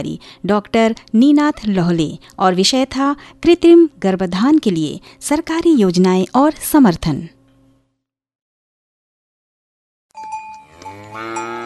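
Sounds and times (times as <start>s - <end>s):
speech: 0.0s - 7.4s
cow lowing while giving plenty of milk: 10.6s - 11.6s.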